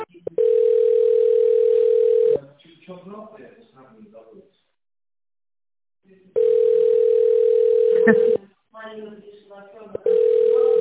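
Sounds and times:
telephone line tone while an office call is transferred: 0:00.4 - 0:02.4, 0:06.4 - 0:08.4, 0:10.0 - 0:10.7
people talking: 0:02.4 - 0:04.5, 0:08.0 - 0:10.7.

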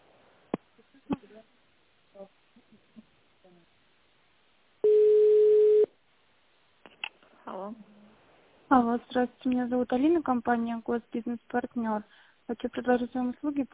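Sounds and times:
telephone line tone while a call is being connected: 0:04.8 - 0:05.9
speech: 0:08.7 - 0:13.7.

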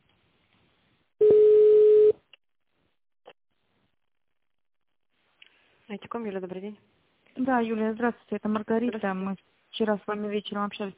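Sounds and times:
telephone ringback tone while a call is transferred: 0:01.2 - 0:02.2
speech: 0:05.9 - 0:10.9.

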